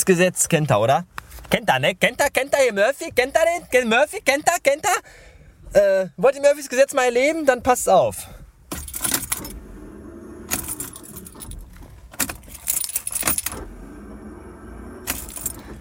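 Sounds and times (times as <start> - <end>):
speech: 0.0 - 8.4
keys jangling: 8.7 - 9.6, 10.5 - 13.6, 15.1 - 15.7
faulty car starter cranking without the engine starting: 8.7 - 15.7.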